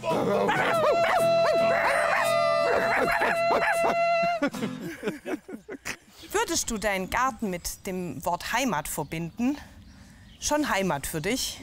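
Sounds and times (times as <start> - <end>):
laughter: 0.0 - 6.1
speech: 0.2 - 0.7, 3.5 - 5.3, 6.5 - 9.7, 10.4 - 11.6
dog barking and yipping: 0.5 - 4.0.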